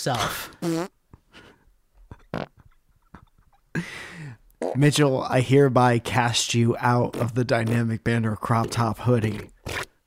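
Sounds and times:
speech: 0:00.0 - 0:01.0, 0:04.8 - 0:09.9
person imitating wet sputtering fart noises with the mouth: 0:00.6 - 0:00.9, 0:02.2 - 0:02.7, 0:04.6 - 0:04.9, 0:07.0 - 0:10.0.

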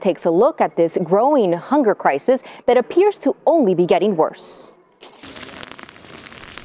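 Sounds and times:
speech: 0:00.0 - 0:04.8
rain on hard surfaces outside a slaughterhouse in San Cristobal Venezuela: 0:05.2 - 0:06.6.

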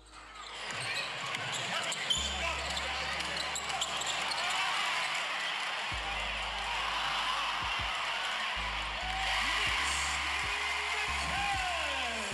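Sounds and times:
sneaker squeaks on a basketball court: 0:00.0 - 0:05.7
basketball game crowd roaring and cheering: 0:00.0 - 0:12.3.

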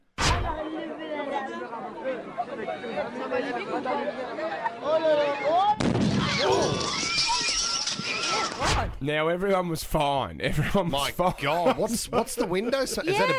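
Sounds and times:
children chattering and shouting in a lively crowd: 0:00.4 - 0:08.6, 0:13.1 - 0:13.3
speech: 0:01.8 - 0:05.7, 0:08.7 - 0:13.3
laughter: 0:10.5 - 0:13.3.

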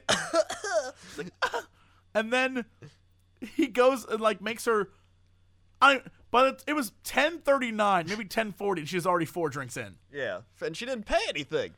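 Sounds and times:
person imitating a woman coughing after a spicy drink: 0:00.0 - 0:01.8
speech: 0:01.2 - 0:01.6, 0:02.2 - 0:03.0, 0:03.6 - 0:05.0, 0:05.8 - 0:11.7.

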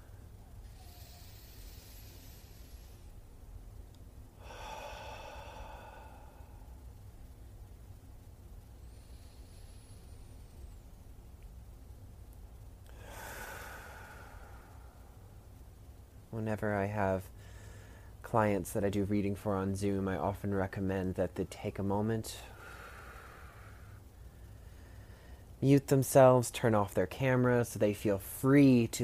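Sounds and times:
slow deep breaths during a seated grounding exercise: 0:00.0 - 0:03.2, 0:04.4 - 0:07.0, 0:08.8 - 0:10.8, 0:12.9 - 0:15.4, 0:17.3 - 0:18.2, 0:22.4 - 0:25.6
speech: 0:16.4 - 0:17.4, 0:18.3 - 0:22.5, 0:25.6 - 0:29.0.

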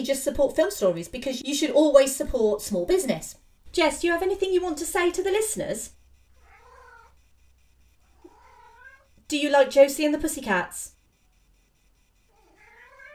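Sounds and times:
speech: 0:00.0 - 0:06.0, 0:09.3 - 0:10.9
female cat crying with drawn-out wavering meows: 0:06.4 - 0:07.2, 0:08.1 - 0:09.1, 0:12.3 - 0:13.1.

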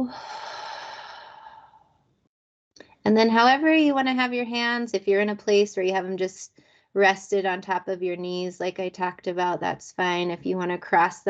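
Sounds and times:
speech: 0:00.0 - 0:00.4, 0:03.0 - 0:11.2
long breathy exhale during a guided deep-breathing exercise: 0:00.1 - 0:01.9.

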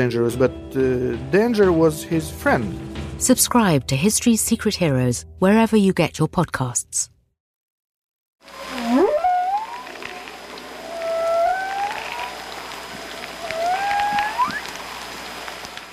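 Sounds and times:
speech: 0:00.0 - 0:07.2
underwater whale song with rising sliding tonal calls: 0:08.4 - 0:15.5
steady hiss of ocean noise: 0:08.4 - 0:15.7.

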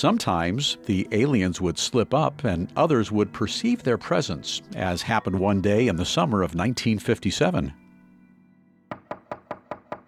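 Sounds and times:
speech: 0:00.0 - 0:07.8
knocking on a garage door: 0:08.9 - 0:10.0.

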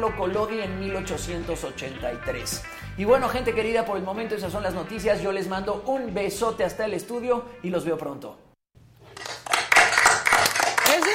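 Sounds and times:
speech: 0:00.0 - 0:08.4
applause of many clapping hands: 0:09.2 - 0:11.1.

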